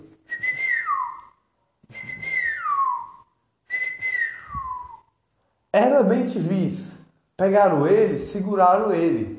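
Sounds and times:
person whistling imitating little birds chirping: 0:00.2 - 0:05.1
speech: 0:05.8 - 0:09.3.

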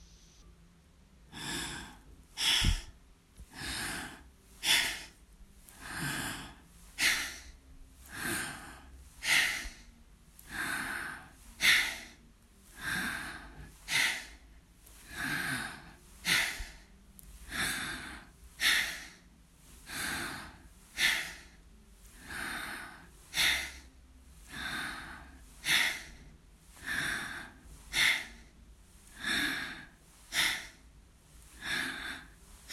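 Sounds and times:
forceful breathing through both nostrils during belly-breathing exercise: 0:01.3 - 0:32.7.

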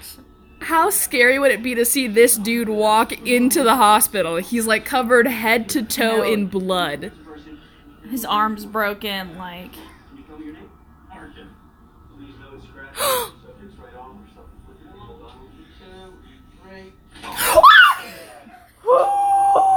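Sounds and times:
quiet talk: 0:00.0 - 0:17.5
speech: 0:00.6 - 0:07.2, 0:08.1 - 0:10.6
sharp gasp: 0:13.0 - 0:13.4
person screaming in fright: 0:17.5 - 0:18.1, 0:18.9 - 0:19.7.

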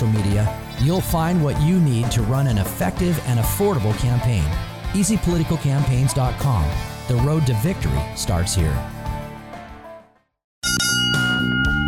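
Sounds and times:
speech: 0:00.5 - 0:09.0
bell ringing: 0:10.6 - 0:11.8.

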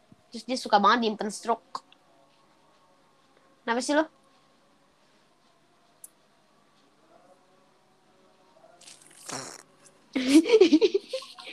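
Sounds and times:
speech: 0:00.3 - 0:01.8, 0:03.7 - 0:04.2
squeaky puff and loud sputtering fart: 0:08.8 - 0:09.7
laughter: 0:10.2 - 0:11.5.

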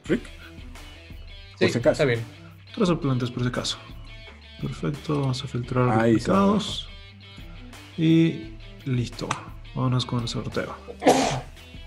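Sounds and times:
speech: 0:00.1 - 0:00.4, 0:01.6 - 0:04.0, 0:04.6 - 0:06.9, 0:08.0 - 0:11.5
sneeze: 0:11.0 - 0:11.6.

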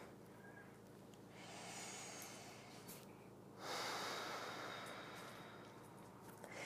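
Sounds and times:
slow deep breathing during a bedtime yoga class: 0:01.3 - 0:06.6.

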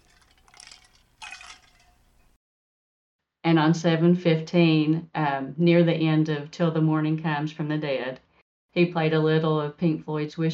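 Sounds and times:
short liquid sounds: 0:00.0 - 0:02.4
speech: 0:03.5 - 0:10.5.

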